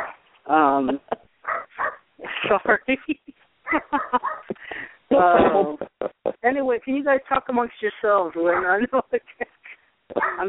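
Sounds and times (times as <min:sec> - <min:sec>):
dog barking after a knock at the door: 0:00.0 - 0:00.2, 0:01.4 - 0:02.0, 0:03.7 - 0:04.5, 0:08.5 - 0:08.8, 0:10.1 - 0:10.4
speech: 0:00.5 - 0:01.2, 0:02.4 - 0:05.8, 0:06.5 - 0:09.5.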